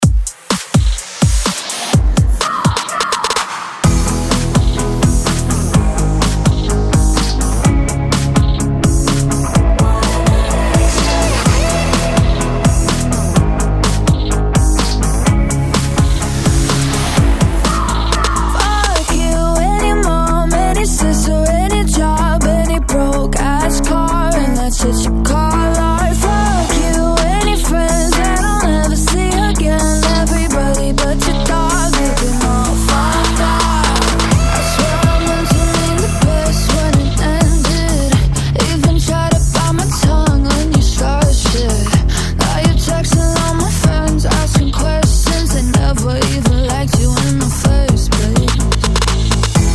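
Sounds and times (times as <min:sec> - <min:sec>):
breakbeat: 0:00.0 - 0:49.7.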